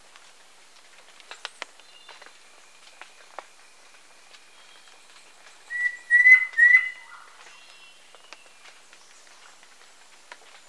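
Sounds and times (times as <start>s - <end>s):
faint clicks and ticks: 0.0s - 5.8s, 7.4s - 10.6s
yellow-breasted antpitta calling: 5.7s - 7.2s.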